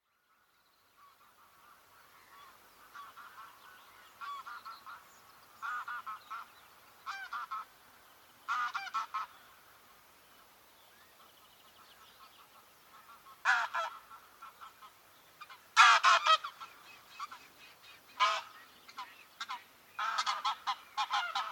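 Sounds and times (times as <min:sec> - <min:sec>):
Anser anser greylag goose calling: 0:01.0 - 0:07.7, 0:08.5 - 0:09.4, 0:12.9 - 0:21.5.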